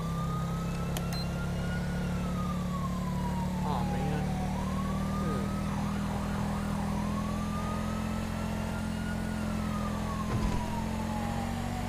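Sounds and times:
constant low engine drone: 0:00.0 - 0:07.7, 0:09.6 - 0:11.8
police car siren in a video game wailing: 0:00.0 - 0:11.8
thump: 0:10.3 - 0:10.8.

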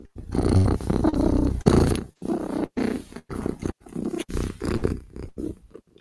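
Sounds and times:
big cat purring growl: 0:00.0 - 0:05.9.

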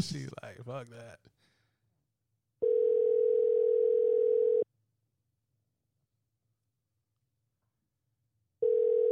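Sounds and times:
speech: 0:00.0 - 0:01.4
ringback tone of an unanswered outgoing phone call: 0:02.6 - 0:04.6, 0:08.6 - 0:09.1.

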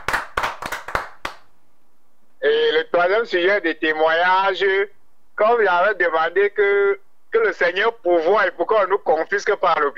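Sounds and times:
hand clapping during a church service: 0:00.0 - 0:01.5
speech: 0:03.0 - 0:09.9.

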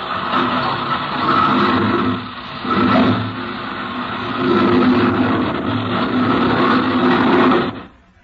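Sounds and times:
propeller airplane engine starting and running: 0:00.0 - 0:08.0.

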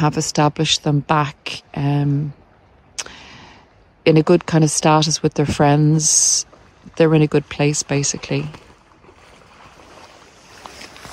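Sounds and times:
speech: 0:00.0 - 0:02.4, 0:04.0 - 0:08.7
ducks splashing and diving in water: 0:06.4 - 0:11.1.

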